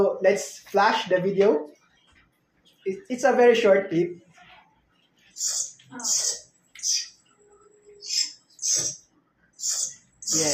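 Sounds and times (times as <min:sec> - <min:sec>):
speech: 0:00.0 - 0:01.8, 0:02.8 - 0:04.2, 0:05.4 - 0:07.0, 0:08.7 - 0:09.0, 0:09.7 - 0:10.5
baby bird nestling crying for food: 0:05.4 - 0:07.2, 0:08.0 - 0:09.0, 0:09.6 - 0:10.5.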